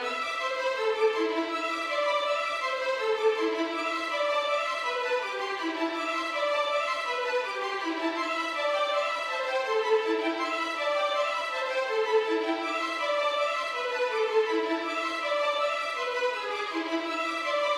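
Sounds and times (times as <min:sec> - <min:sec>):
violins: 0:00.0 - 0:17.7.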